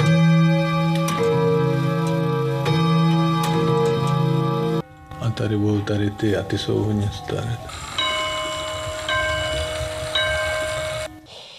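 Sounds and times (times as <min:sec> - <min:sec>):
clocks ticking in a clockmaker's shop: 0:00.0 - 0:11.1
bright ringing clock chimes in a shop: 0:04.8 - 0:11.2
speech: 0:05.4 - 0:07.9.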